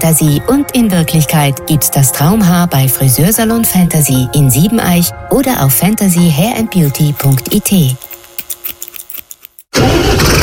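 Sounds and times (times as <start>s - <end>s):
speech: 0.0s - 8.1s
third-generation Fendt Vario tractor starter cranking: 7.1s - 10.4s
third-generation Fendt Vario tractor engine roaring: 9.7s - 10.4s.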